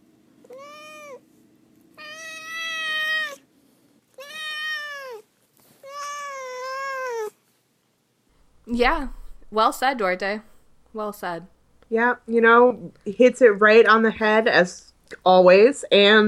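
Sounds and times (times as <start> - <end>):
domestic cat meowing: 0.5 - 1.2, 2.0 - 3.4, 4.2 - 7.4
soft low rumble: 8.3 - 15.3
speech: 8.7 - 16.2.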